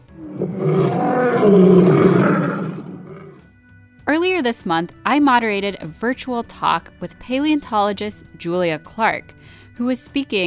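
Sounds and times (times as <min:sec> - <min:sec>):
deep lion-like roar: 0:00.0 - 0:03.4
speech: 0:01.5 - 0:01.9, 0:04.3 - 0:10.4.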